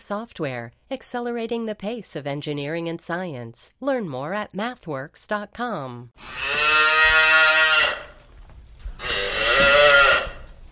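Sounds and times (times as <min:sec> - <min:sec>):
speech: 0:00.1 - 0:07.0
cow mooing on Boston Common: 0:06.2 - 0:08.2, 0:09.0 - 0:10.5.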